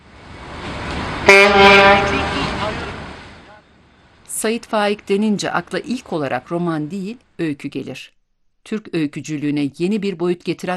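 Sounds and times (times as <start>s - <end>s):
ferry horn blast: 1.2s - 3.6s
speech: 4.4s - 10.7s.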